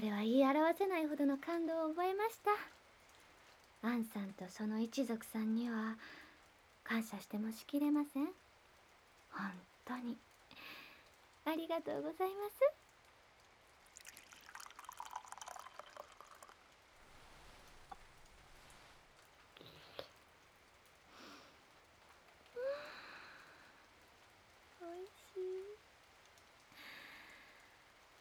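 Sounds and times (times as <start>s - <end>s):
speech: 0.0s - 2.8s, 3.8s - 6.2s, 6.9s - 8.4s, 9.3s - 10.8s, 11.4s - 12.8s
faint drips: 0.0s - 28.1s
steady rain falling heard from a veranda: 0.0s - 28.1s
poured liquid splash: 13.8s - 19.0s.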